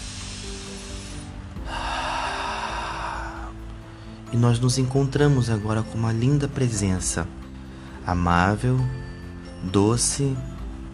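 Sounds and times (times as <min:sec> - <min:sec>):
slow deep inhaling breath: 0:00.0 - 0:04.3, 0:07.4 - 0:08.0
speech: 0:04.3 - 0:07.4, 0:08.1 - 0:10.5.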